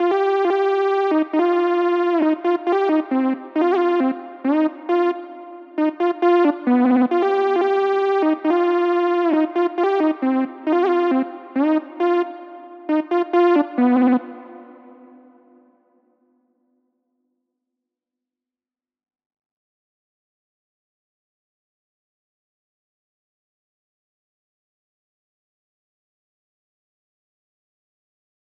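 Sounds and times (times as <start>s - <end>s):
Juno-60 synth lead in C minor at 135 BPM: 0.0s - 15.6s.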